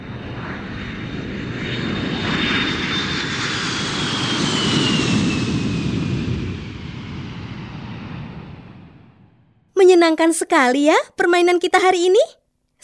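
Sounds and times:
airplane engine roar: 0:00.0 - 0:09.5
speech: 0:10.0 - 0:12.8.

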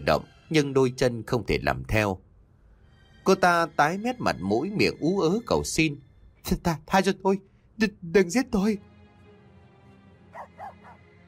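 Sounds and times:
speech: 0:00.0 - 0:02.2, 0:03.2 - 0:08.9
dog barking: 0:10.3 - 0:11.1.

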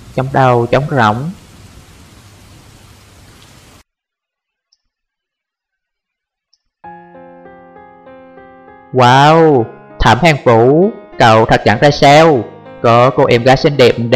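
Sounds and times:
steady dense rain hissing: 0:00.0 - 0:03.8
speech: 0:00.2 - 0:01.4, 0:08.9 - 0:14.1
tonal music: 0:06.8 - 0:14.1.

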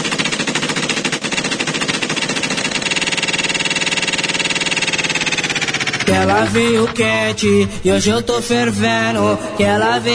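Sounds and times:
machine gun fire sound effect at a live party show: 0:00.0 - 0:07.6
speech: 0:06.1 - 0:10.1.

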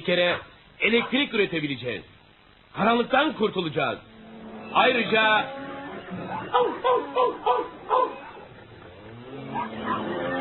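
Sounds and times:
speech: 0:00.0 - 0:04.1, 0:04.7 - 0:08.2
dogs on a farm barking aggressively: 0:06.1 - 0:10.4
dog yips: 0:06.3 - 0:08.5, 0:09.5 - 0:10.4.

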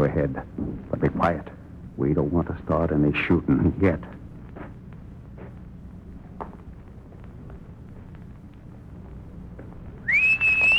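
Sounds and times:
speech: 0:00.0 - 0:04.2
low rumbling noise: 0:00.0 - 0:10.7
loud piercing human whistle: 0:10.1 - 0:10.7.

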